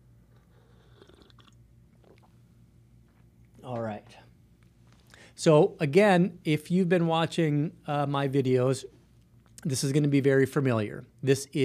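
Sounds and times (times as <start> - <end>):
steady low hum: 0.0 - 11.6
slurping sips of hot coffee: 0.4 - 2.3
swallow: 0.4 - 2.4
speech: 3.6 - 4.2, 5.4 - 9.0, 9.6 - 11.6.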